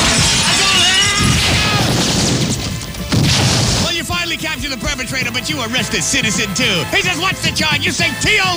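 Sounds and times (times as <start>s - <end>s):
large plate glass window shattering as a person dives through it: 0.0s - 4.0s
speech: 5.0s - 8.5s.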